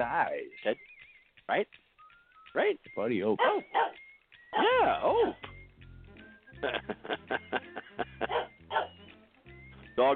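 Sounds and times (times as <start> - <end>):
speech: 0.0 - 0.9, 1.5 - 1.8, 2.5 - 5.6, 6.6 - 9.0, 10.0 - 10.1
old dog barking: 3.4 - 4.0, 8.2 - 9.0
laughter: 6.5 - 8.5.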